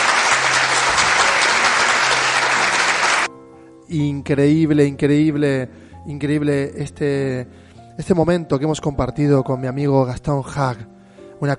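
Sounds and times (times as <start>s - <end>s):
audience applause: 0.0s - 3.3s
speech: 3.9s - 11.5s.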